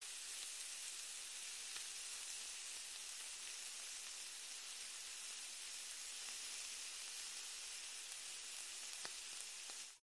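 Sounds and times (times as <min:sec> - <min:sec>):
steak frying and sizzling in a household kitchen: 0:00.0 - 0:10.0.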